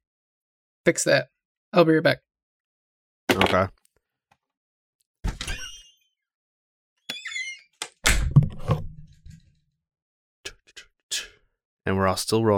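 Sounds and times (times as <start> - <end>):
speech: 0.8 - 2.2, 3.4 - 3.8, 11.9 - 12.5
door creaking and squeaking open: 5.2 - 6.1, 7.0 - 9.0
door sliding and shutting with a heavy low thunk: 8.0 - 9.0.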